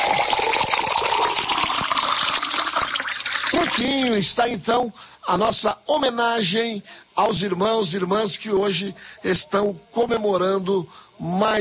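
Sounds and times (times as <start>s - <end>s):
water pouring into a glass: 0.0s - 3.9s
speech: 3.6s - 11.6s.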